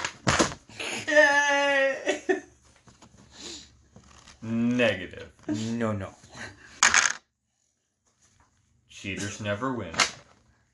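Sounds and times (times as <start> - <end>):
sustained voiced cry: 0.8 - 2.3
speech: 4.9 - 6.2, 9.0 - 10.2
dice rolled onto a table: 6.8 - 7.3.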